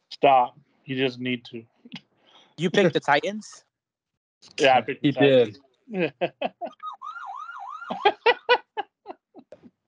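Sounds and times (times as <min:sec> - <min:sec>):
speech: 0:00.2 - 0:02.0, 0:02.6 - 0:03.7, 0:04.4 - 0:06.9
short choppy vocal bursts: 0:04.6 - 0:06.3
laughter: 0:04.6 - 0:06.8, 0:07.9 - 0:09.5
person imitating a siren with their voice: 0:06.6 - 0:08.5.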